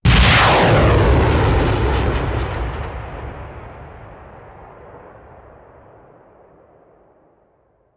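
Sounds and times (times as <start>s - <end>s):
artillery missile launcher firing: 0.1s - 5.4s.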